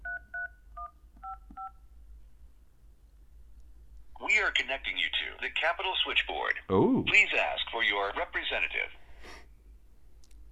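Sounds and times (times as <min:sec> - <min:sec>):
phone keypad tones entering zip code: 0:00.0 - 0:01.8
faint hum: 0:00.0 - 0:10.5
speech: 0:04.4 - 0:09.0.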